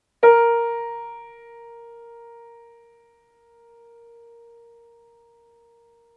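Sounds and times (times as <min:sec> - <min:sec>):
piano playing A sharp note: 0:00.2 - 0:06.1.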